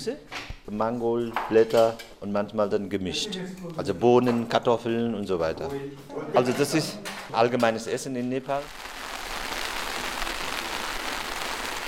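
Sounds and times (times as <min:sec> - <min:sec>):
speech: 0:00.0 - 0:08.9
heavy rain drumming on a tin roof: 0:08.7 - 0:11.8.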